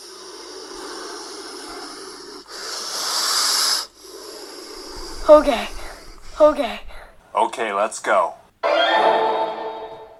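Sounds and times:
snake hissing as a threat: 0.0s - 7.2s
speech: 5.3s - 5.8s, 6.4s - 8.8s.

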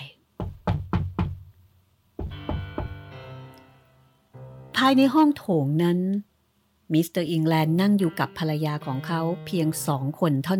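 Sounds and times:
knocking on a door: 0.4s - 1.5s, 2.2s - 3.1s
heavy thumps with a ringing resonant tone: 0.4s - 1.6s, 2.2s - 3.2s
speech: 4.8s - 6.3s, 6.9s - 10.5s.

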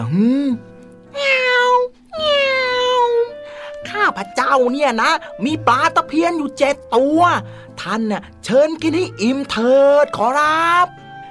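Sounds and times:
speech: 0.0s - 1.4s, 4.1s - 11.0s
wild cat meowing: 1.1s - 3.4s.

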